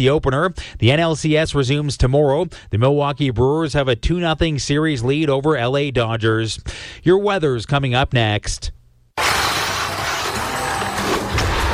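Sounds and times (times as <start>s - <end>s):
speech: 0.0s - 8.8s
car crash with crunching metal and shattering debris: 9.2s - 11.7s.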